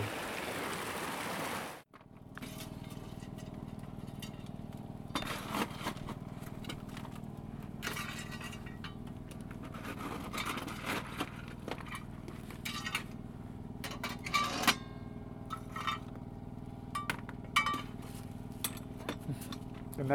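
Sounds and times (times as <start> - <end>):
river water flowing as water bottles are filled: 0.0 - 1.9
coal being put into a small yurt stove: 2.4 - 7.0, 7.7 - 13.2, 13.8 - 16.2, 17.0 - 20.0.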